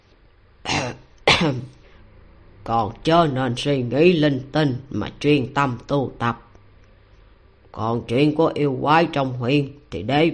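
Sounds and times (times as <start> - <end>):
dry coughs: 0.7 - 1.8
speech: 0.8 - 1.8, 2.6 - 6.4, 7.7 - 10.3.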